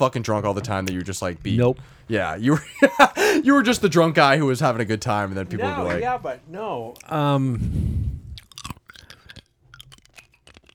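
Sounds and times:
speech: 0:00.0 - 0:08.0
laughter: 0:02.4 - 0:06.4
ice cube being chewed: 0:08.4 - 0:10.7.

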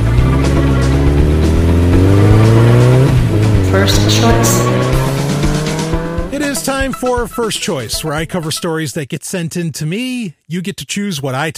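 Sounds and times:
motorcycle engine revving and accelerating away: 0:00.0 - 0:06.9
speech: 0:06.8 - 0:11.5.

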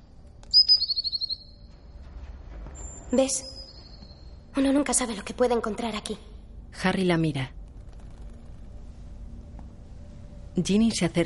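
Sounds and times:
black bird shrill whistling cry bursting out of a wardrobe: 0:00.5 - 0:01.6
speech: 0:03.1 - 0:03.6, 0:04.6 - 0:07.6, 0:10.6 - 0:11.2.

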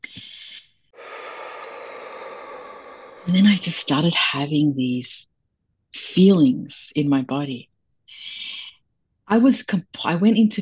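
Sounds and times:
deep breathing in and out with a slight snort: 0:01.0 - 0:04.2
speech: 0:03.3 - 0:05.3, 0:06.1 - 0:07.7, 0:09.3 - 0:10.6.

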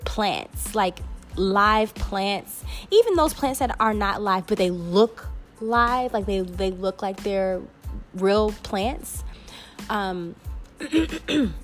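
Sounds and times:
speech: 0:00.2 - 0:11.6
person clearing throat: 0:10.8 - 0:11.6.

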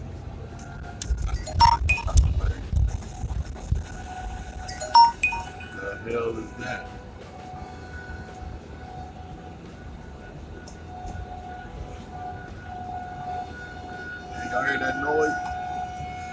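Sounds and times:
constant low rumble of traffic or machinery: 0:00.0 - 0:04.6, 0:05.6 - 0:16.3
loud one o'clock siren wailing outdoors: 0:11.3 - 0:16.3.

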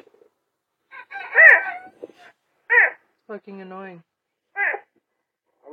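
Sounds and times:
serval cat calling: 0:01.2 - 0:03.0, 0:04.6 - 0:05.0
speech: 0:03.3 - 0:04.1.

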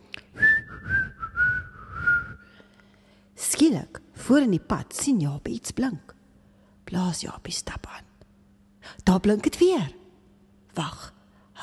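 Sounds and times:
person whistling a gentle lilting tune: 0:00.4 - 0:02.5
speech: 0:03.5 - 0:06.2, 0:06.9 - 0:08.1, 0:09.0 - 0:10.0, 0:10.8 - 0:11.6.

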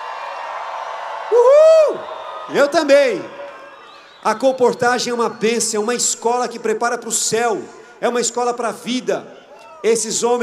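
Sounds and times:
audience member whooping: 0:00.0 - 0:05.9
speech: 0:01.3 - 0:03.4, 0:04.2 - 0:10.4.

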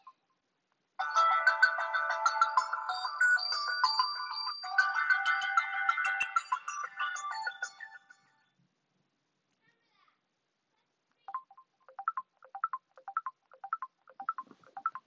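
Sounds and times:
bright electronic phone ringtone melody: 0:01.0 - 0:08.4, 0:11.3 - 0:15.0.

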